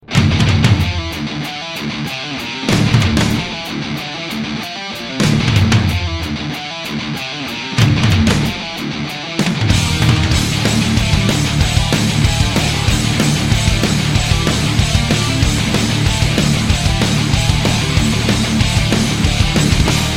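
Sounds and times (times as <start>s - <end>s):
heavy metal music: 0.0s - 20.1s.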